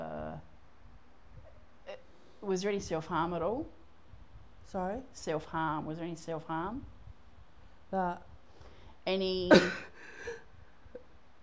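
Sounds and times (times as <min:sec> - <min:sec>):
speech: 0:02.4 - 0:03.8, 0:04.7 - 0:06.9, 0:07.9 - 0:08.3, 0:09.0 - 0:09.9
person sneezing: 0:09.5 - 0:10.4.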